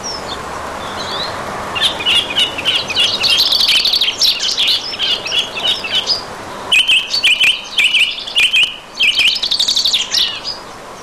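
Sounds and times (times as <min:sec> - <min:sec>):
Song thrush song: 0:00.0 - 0:11.0.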